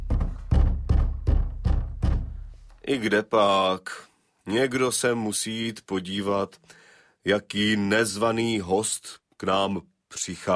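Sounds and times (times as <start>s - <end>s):
fists pounding heavily on a door: 0.0s - 2.5s
speech: 2.9s - 10.5s.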